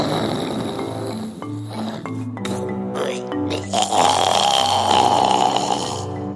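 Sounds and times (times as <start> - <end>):
loud deep snoring of a sleeping dinosaur: 0.0 - 6.3.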